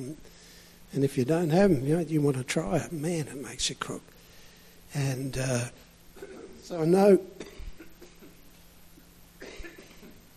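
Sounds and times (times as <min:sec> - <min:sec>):
speech: 0:00.0 - 0:04.2, 0:04.9 - 0:05.8, 0:06.7 - 0:07.5
low steady hum: 0:00.0 - 0:10.3
person coughing: 0:06.2 - 0:06.6, 0:07.4 - 0:08.4, 0:09.4 - 0:10.2.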